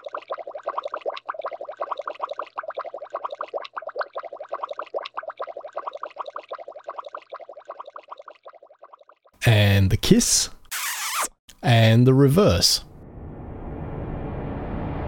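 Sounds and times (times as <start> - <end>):
burbling bubble sound effect: 0.0 - 9.3
speech: 9.4 - 10.6, 11.6 - 12.9.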